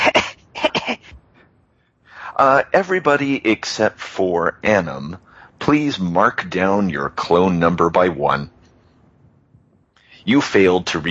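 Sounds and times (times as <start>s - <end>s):
player coughing during a tabletop role-playing game session: 0.0s - 1.2s
speech: 2.4s - 8.6s, 10.2s - 11.0s.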